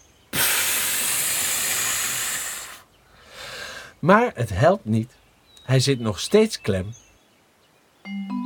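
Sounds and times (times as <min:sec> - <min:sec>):
hiss of air blown out hard as a sound effect: 0:00.3 - 0:02.9
speech: 0:04.0 - 0:07.0, 0:08.0 - 0:08.3.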